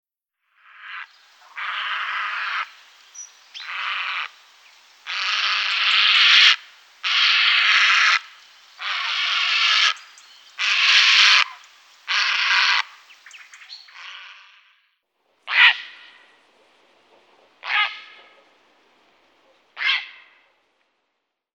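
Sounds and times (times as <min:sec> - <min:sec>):
grey heron calling: 0:00.7 - 0:04.4, 0:05.0 - 0:14.6, 0:15.4 - 0:20.7.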